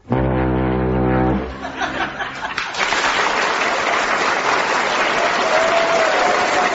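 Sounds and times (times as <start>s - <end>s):
male impressionist from Norwich mimicking a deep droning foghorn blast: 0.0s - 1.7s
laughter: 1.4s - 3.4s
studio audience applauding: 2.2s - 6.7s.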